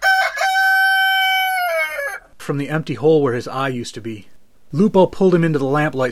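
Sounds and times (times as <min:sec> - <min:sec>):
rooster crowing: 0:00.0 - 0:02.3
speech: 0:02.5 - 0:06.1.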